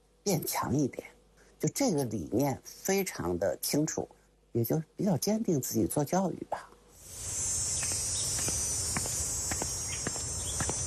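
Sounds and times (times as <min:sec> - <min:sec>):
cicadas droning in June midsummer: 0:00.0 - 0:10.8
speech: 0:00.3 - 0:07.4
soft irregular footsteps or taps: 0:07.8 - 0:10.8.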